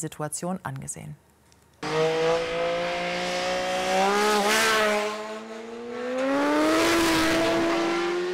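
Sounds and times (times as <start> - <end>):
speech: 0.0 - 1.3
engine roar of cars speeding through a curve on a hill road: 1.8 - 8.3.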